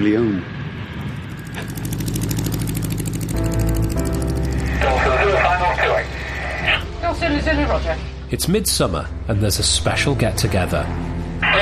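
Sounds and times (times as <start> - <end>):
speech: 0.0 - 0.6, 7.2 - 11.6
light aircraft engine droning as the plane takes off: 0.0 - 11.6
radio-like voice: 4.8 - 6.8.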